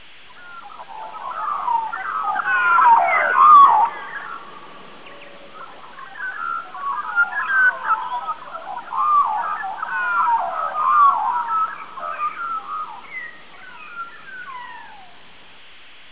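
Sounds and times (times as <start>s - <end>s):
magpie: 0.4s - 15.2s.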